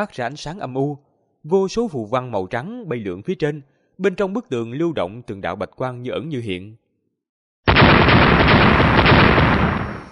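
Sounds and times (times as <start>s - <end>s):
speech: 0.0s - 6.8s
loud explosion striking an ice wall: 7.7s - 10.1s.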